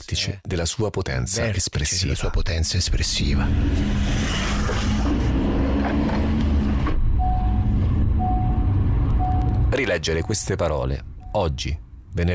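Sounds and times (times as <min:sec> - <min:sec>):
speech: 0:00.0 - 0:05.5, 0:09.7 - 0:12.3
car engine rumble in city traffic in Rome: 0:03.1 - 0:12.3
road noise from a car driving through city traffic: 0:03.1 - 0:12.3
short high-pitched beeps: 0:07.2 - 0:10.5.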